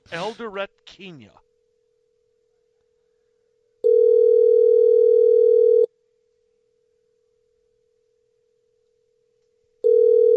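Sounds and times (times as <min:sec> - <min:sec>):
speech: 0:00.1 - 0:01.4
ringback tone of a telephone call to Eldoret, Kenya: 0:03.8 - 0:05.9, 0:09.8 - 0:10.3.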